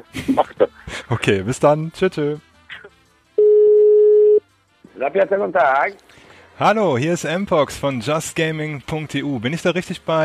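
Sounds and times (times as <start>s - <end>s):
laughter: 0.0s - 1.4s
speech: 0.0s - 2.5s, 5.0s - 10.2s
telephone ringback tone while calling a pizzeria: 3.4s - 4.4s.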